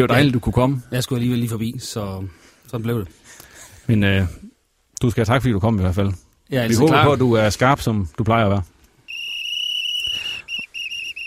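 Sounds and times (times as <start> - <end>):
speech: 0.0 - 8.7
shrill steady whistle and short quick blasts: 9.1 - 11.2.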